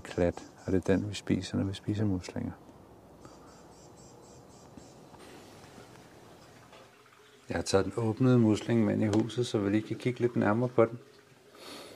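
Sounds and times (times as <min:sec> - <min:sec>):
speech: 0:00.2 - 0:02.7, 0:07.5 - 0:11.1
aquarium water splashing and gurgling in a house: 0:04.9 - 0:11.9.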